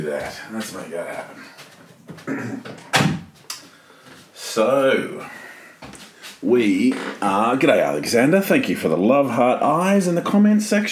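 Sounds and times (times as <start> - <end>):
speech: 0.0 - 1.6, 2.3 - 2.9, 4.5 - 5.4, 6.4 - 10.9
shuffling and creaking of a door: 0.0 - 7.8
door pushed shut with a solid thud: 2.6 - 3.3.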